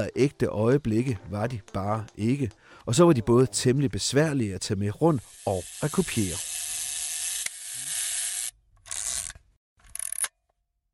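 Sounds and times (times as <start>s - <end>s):
speech: 0.0s - 6.5s
vintage camera mechanical winding whir: 5.2s - 10.3s.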